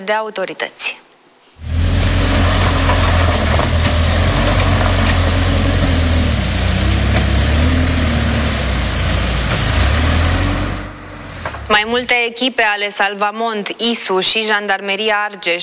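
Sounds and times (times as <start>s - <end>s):
speech: 0.0s - 1.7s, 11.7s - 15.6s
backhoe loader diesel engine idling: 1.6s - 12.1s.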